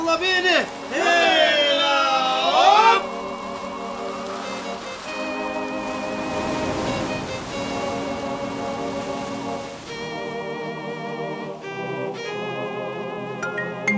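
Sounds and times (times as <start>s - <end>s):
stormy sea waves: 0.0s - 13.8s
speech: 0.1s - 1.4s
rising tonal wail: 0.7s - 13.4s.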